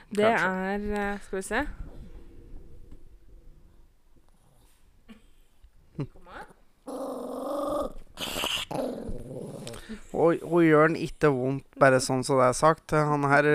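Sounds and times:
speech: 0.1s - 1.8s, 6.0s - 6.2s, 10.1s - 13.5s
male dog growling and snarling: 6.8s - 10.0s.

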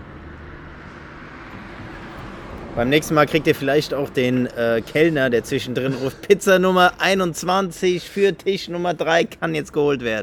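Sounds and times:
car driving past with tyre and engine rumble: 0.0s - 5.9s
speech: 2.8s - 10.2s.

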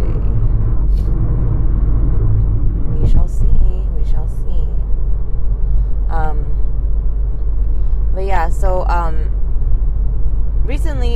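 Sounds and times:
road noise inside a car driving in heavy traffic in California: 0.0s - 11.1s.

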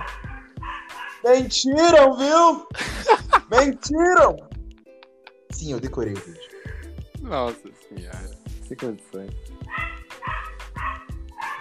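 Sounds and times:
female dog barking in yappy bursts: 0.0s - 1.4s, 9.6s - 11.6s
speech: 1.2s - 4.5s, 5.5s - 6.5s, 7.3s - 9.9s
laughter: 2.7s - 3.9s.

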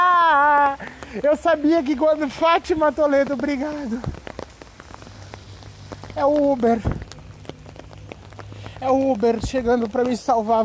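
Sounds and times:
steady rain pattering: 0.0s - 10.6s
droplets striking a hard surface: 0.1s - 10.6s
speech: 1.2s - 4.2s, 6.2s - 7.0s, 8.8s - 10.6s.

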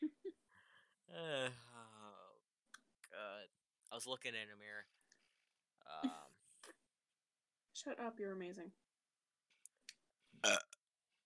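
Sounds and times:
loud rough burp: 1.1s - 2.4s, 10.4s - 10.8s
speech: 1.2s - 1.7s, 3.2s - 5.0s, 5.8s - 6.4s, 7.8s - 8.8s, 10.4s - 10.7s.

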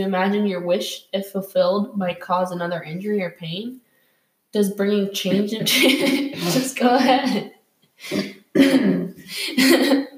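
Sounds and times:
speech: 0.0s - 3.8s, 4.5s - 10.0s
anxious person coughing from nervousness: 5.6s - 10.1s.

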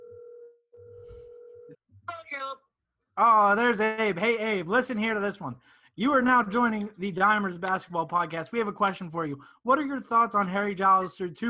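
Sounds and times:
ringback tone of an outgoing phone call: 0.0s - 1.7s
speech: 1.7s - 11.4s.

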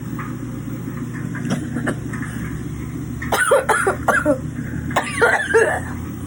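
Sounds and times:
low mechanical rumble: 0.0s - 6.2s
person coughing: 3.3s - 6.0s.

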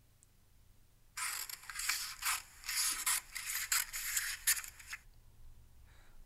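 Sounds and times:
scissors snipping through material: 1.2s - 5.0s.

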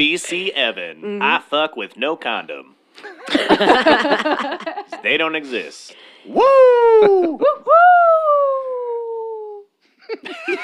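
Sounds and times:
speech: 0.0s - 8.6s, 10.1s - 10.6s
laughter: 3.0s - 5.4s, 6.7s - 7.7s, 10.0s - 10.6s
person imitating a coyote howl: 6.3s - 9.7s.

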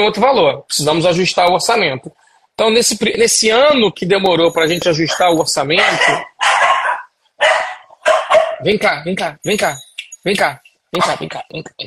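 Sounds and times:
speech: 0.0s - 6.6s, 8.6s - 11.8s
dog barking excitedly: 5.1s - 8.7s.

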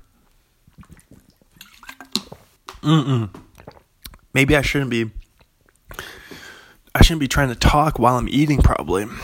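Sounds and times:
person gulping water quickly: 0.6s - 4.3s
speech: 2.8s - 3.4s, 4.4s - 5.2s, 7.0s - 9.2s.

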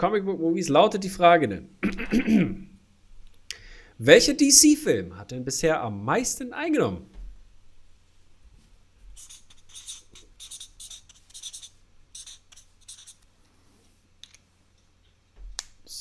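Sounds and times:
speech: 0.0s - 2.7s, 4.0s - 7.1s
low hum: 0.0s - 15.9s
quiz players scratching answers on paper with pens: 9.2s - 13.2s.

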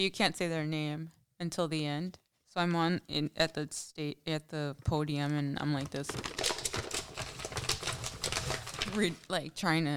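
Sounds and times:
speech: 0.0s - 6.5s, 9.0s - 9.9s
paper crinkling: 5.8s - 9.4s.

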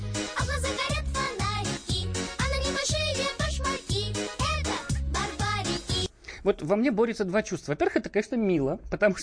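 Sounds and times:
bouncy catchy children's song with thumping beat: 0.0s - 6.2s
speech: 6.4s - 9.2s.

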